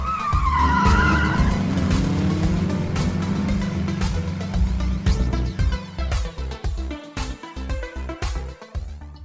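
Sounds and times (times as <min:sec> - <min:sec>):
car tires screeching: 0:00.0 - 0:06.0
roaring car engine: 0:00.0 - 0:07.0.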